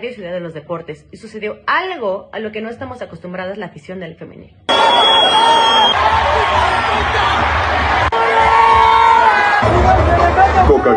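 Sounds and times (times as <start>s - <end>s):
speech: 0.0s - 8.0s, 9.6s - 10.9s
whistles: 4.7s - 6.0s
large stadium crowd shouting and cheering at women's football final: 4.7s - 10.9s
yells: 4.7s - 10.9s.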